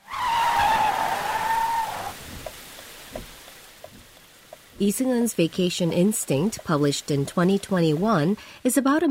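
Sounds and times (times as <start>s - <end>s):
sedan tires skidding with a squeal on a rainy road: 0.0s - 4.2s
soft patter of rain: 0.0s - 9.1s
speech: 4.8s - 9.1s.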